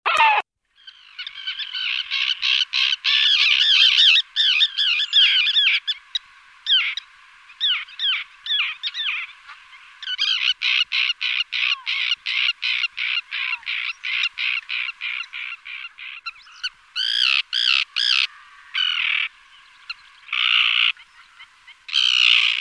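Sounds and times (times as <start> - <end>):
common tern Sterna hirundo calling: 0.0 - 22.6.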